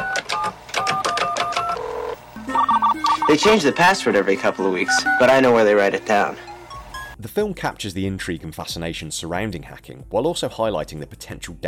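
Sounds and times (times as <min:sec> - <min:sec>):
steady modem tones over a telephone line: 0:00.0 - 0:07.2
short electronic telephone dialing beeps from a 1980s computer: 0:02.6 - 0:03.5
speech: 0:03.3 - 0:06.5, 0:07.2 - 0:11.6.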